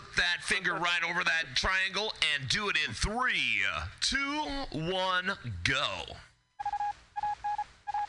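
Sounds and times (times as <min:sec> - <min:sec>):
noisy background: 0:00.0 - 0:08.0
speech: 0:00.2 - 0:06.3
Morse code radio station identification beeps: 0:06.6 - 0:08.0.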